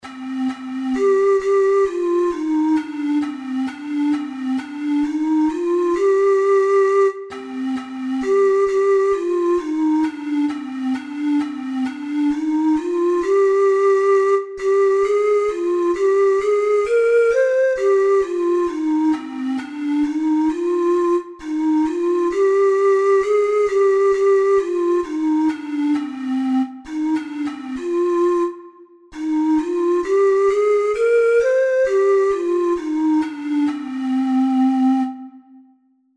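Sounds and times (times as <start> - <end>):
four-hole ocarina melody: 0.0 - 35.9.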